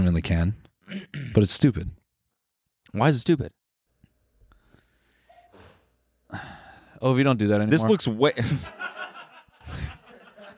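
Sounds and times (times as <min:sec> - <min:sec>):
speech: 0:00.1 - 0:02.0, 0:02.9 - 0:03.6, 0:06.3 - 0:09.0
faint sniffs: 0:04.6 - 0:06.7
short breathy sneeze: 0:05.3 - 0:06.0
laughter: 0:08.4 - 0:10.5.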